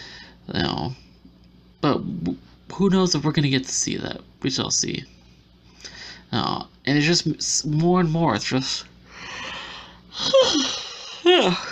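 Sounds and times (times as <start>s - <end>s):
speech: 0.5s - 1.0s, 1.9s - 5.2s, 6.3s - 9.5s, 11.3s - 11.7s
breathy yawn with drawn-out voiced groans: 10.1s - 11.0s.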